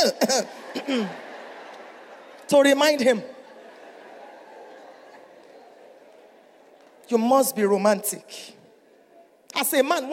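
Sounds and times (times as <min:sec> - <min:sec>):
woman giving a deliberate exaggerated cough: 0:00.0 - 0:01.1
speech: 0:00.0 - 0:01.3, 0:02.5 - 0:03.4, 0:07.1 - 0:08.6, 0:09.5 - 0:10.1
laughter: 0:00.3 - 0:07.0.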